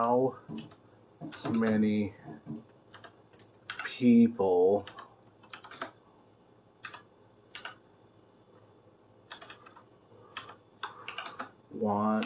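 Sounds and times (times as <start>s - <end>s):
speech: 0.0s - 2.5s, 4.0s - 5.0s, 11.8s - 12.2s
one-handed typing on a computer keyboard: 0.5s - 1.9s, 2.9s - 3.9s, 4.8s - 6.0s, 6.8s - 7.8s, 9.3s - 11.6s.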